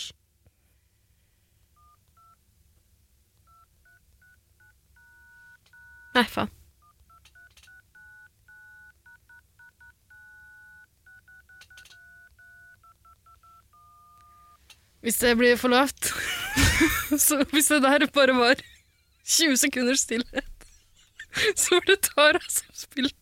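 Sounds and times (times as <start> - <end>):
phone keypad DTMF dialing tones: 1.8 - 2.4, 3.4 - 6.2, 6.8 - 14.6
speech: 6.2 - 6.6, 15.0 - 18.7, 19.3 - 20.4, 21.6 - 23.2
laughter: 16.1 - 17.6, 20.2 - 22.8.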